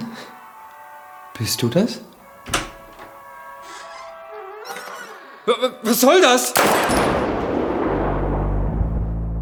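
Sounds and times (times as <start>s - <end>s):
speech: 1.4s - 2.6s, 5.5s - 7.1s
gunshot: 6.6s - 9.3s.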